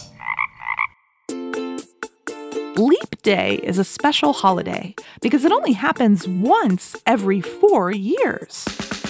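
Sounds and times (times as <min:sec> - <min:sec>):
frog croaking: 0:00.1 - 0:01.3
speech: 0:02.8 - 0:08.9.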